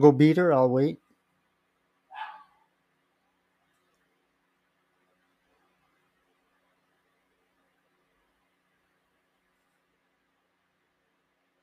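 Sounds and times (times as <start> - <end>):
speech: 0.0 - 1.0
quiet hum: 0.0 - 11.6
pet dog barking: 2.1 - 2.7.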